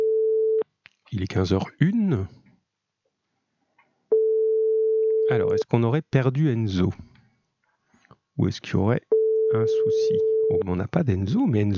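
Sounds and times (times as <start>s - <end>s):
speech: 1.1s - 2.4s, 5.3s - 7.1s, 8.4s - 11.7s
single-pitched ringback tone from an outgoing phone call: 4.1s - 5.6s, 9.1s - 10.6s.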